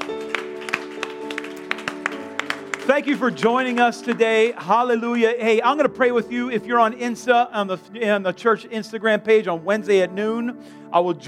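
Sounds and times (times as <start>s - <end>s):
scattered applause from a congregation: 0.0s - 4.4s
speech: 2.9s - 11.2s.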